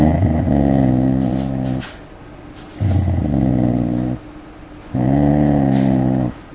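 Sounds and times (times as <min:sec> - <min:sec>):
dog growling at threatening approaching stranger: 0:00.0 - 0:02.0, 0:02.8 - 0:04.3, 0:04.9 - 0:06.5.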